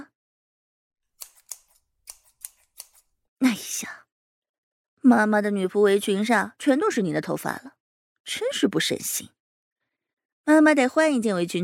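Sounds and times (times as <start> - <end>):
scissors snipping hair during a home haircut: 1.1 - 3.2
speech: 5.0 - 9.4, 10.4 - 11.6.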